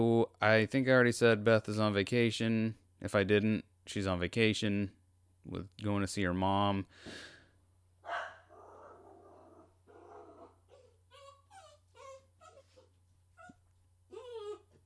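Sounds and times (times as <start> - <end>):
speech: 0.0 - 7.3
dog whining at fireworks: 8.1 - 14.8.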